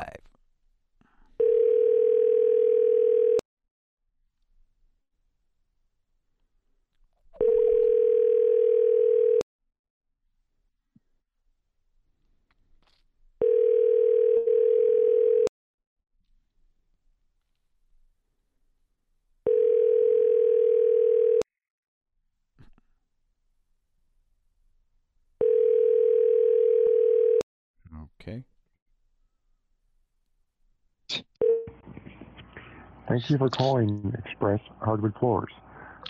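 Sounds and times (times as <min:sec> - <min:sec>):
telephone ringing tone while dialing out: 0:01.4 - 0:03.4, 0:07.4 - 0:09.4, 0:13.4 - 0:15.5, 0:19.5 - 0:21.5, 0:25.4 - 0:27.4
speech: 0:33.2 - 0:36.0.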